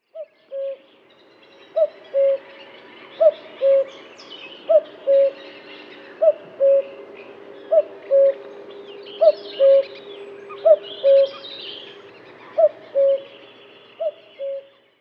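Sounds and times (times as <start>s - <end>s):
birds twittering: 0.0s - 14.9s
common cuckoo calling: 0.2s - 0.8s, 1.8s - 2.5s, 3.2s - 4.0s, 4.7s - 5.4s, 6.2s - 7.0s, 7.7s - 8.4s, 9.2s - 12.0s, 12.6s - 14.8s.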